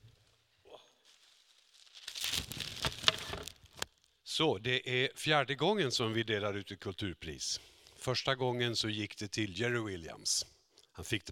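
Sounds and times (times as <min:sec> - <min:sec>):
wrapping crinkling as items are unpacked at a prize presentation: 0:01.0 - 0:04.0
speech: 0:04.4 - 0:11.3.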